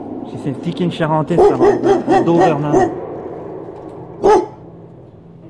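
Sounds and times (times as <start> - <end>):
speech: 0.3 - 3.0
tired dog yelping: 1.4 - 3.0, 4.2 - 4.6.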